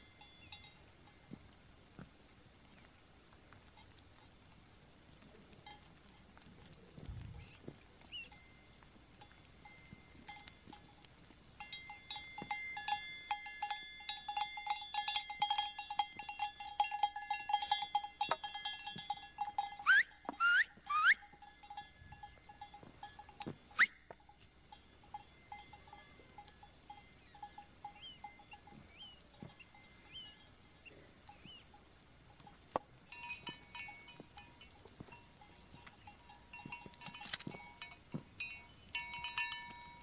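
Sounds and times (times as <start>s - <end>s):
goat bells clanking on a moving herd: 8.3s - 40.0s.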